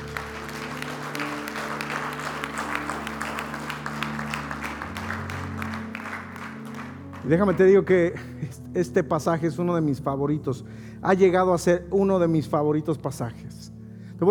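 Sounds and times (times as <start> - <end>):
audience applauding: 0.0 - 7.8
sustained keyboard chords: 0.0 - 12.4
speech: 7.2 - 13.6.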